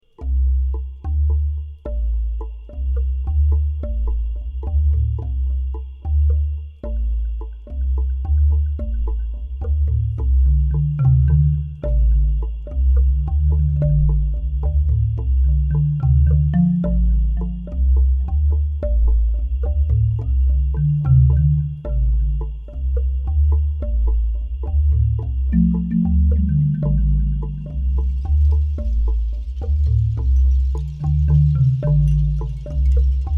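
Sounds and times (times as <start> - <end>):
bass tone bar: 0.0 - 33.3.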